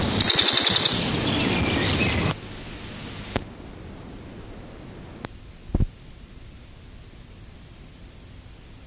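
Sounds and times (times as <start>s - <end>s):
background hiss: 0.1s - 8.8s
Western Bonelli's warbler singing a dry high rattling trill: 0.2s - 2.3s.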